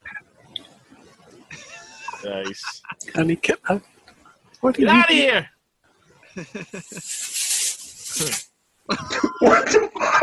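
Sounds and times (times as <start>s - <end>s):
laughter: 1.5s - 3.2s, 6.4s - 7.2s, 8.9s - 10.2s
speech: 2.2s - 3.9s, 4.6s - 5.5s, 6.4s - 7.2s, 8.2s - 10.2s
short choppy bursts: 6.4s - 8.4s
aerosol can spraying air freshener: 6.8s - 8.5s.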